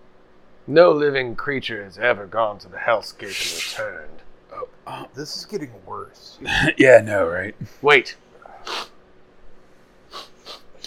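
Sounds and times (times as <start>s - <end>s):
speech: 0.7s - 8.9s
loud sharp sniffing: 3.2s - 3.8s, 8.6s - 9.0s, 10.1s - 10.8s.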